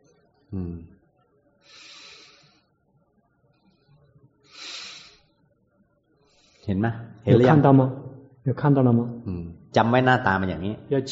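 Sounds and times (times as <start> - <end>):
speech: 0.5 - 0.9, 6.7 - 11.1
deep airy breaths: 1.6 - 2.8, 4.4 - 5.4, 6.2 - 6.7.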